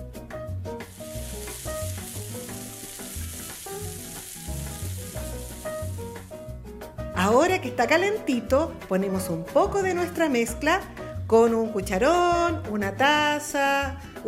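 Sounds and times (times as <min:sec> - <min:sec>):
oil sizzling in a heated frying pan in a kitchen: 0:00.7 - 0:06.6
rhythmic music: 0:00.7 - 0:13.3
speech: 0:07.2 - 0:14.2.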